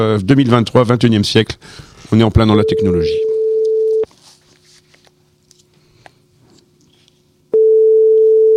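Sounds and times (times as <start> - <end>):
speech: 0.0 - 3.3
telephone line tone from a radio studio's phone system: 2.6 - 4.1, 7.5 - 8.5.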